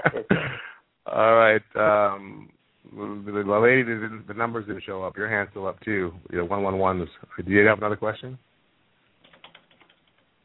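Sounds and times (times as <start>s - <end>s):
speech: 1.2s - 8.5s
typing on a computer keyboard: 9.2s - 10.3s.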